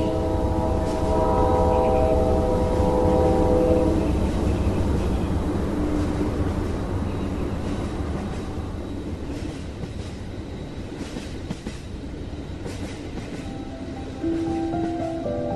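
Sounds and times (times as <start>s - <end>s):
departing train horn blaring: 0.0s - 6.2s, 13.4s - 15.5s
departing train rumbling on the tracks: 0.0s - 15.5s.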